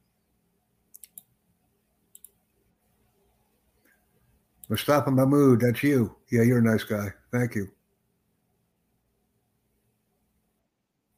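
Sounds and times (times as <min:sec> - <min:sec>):
computer mouse clicks closing open links: 0:00.9 - 0:01.3, 0:02.1 - 0:02.4
speech: 0:04.7 - 0:07.8.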